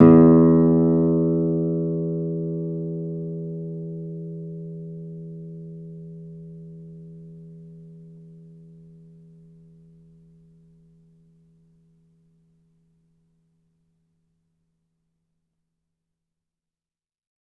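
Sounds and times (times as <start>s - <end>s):
low E note on a classical guitar: 0.0s - 7.4s.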